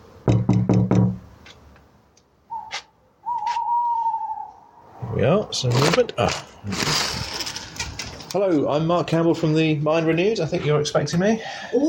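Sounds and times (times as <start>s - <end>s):
firm knocks on a front door: 0.2s - 1.2s
faint steady whistling tone: 2.5s - 5.0s
speech: 5.2s - 7.3s, 8.3s - 11.8s.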